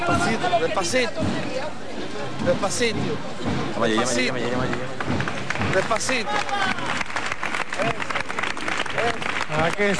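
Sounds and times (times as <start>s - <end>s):
speech: 0.0s - 6.7s, 9.5s - 9.9s
crowd applause during a Holy Week procession: 4.6s - 9.9s.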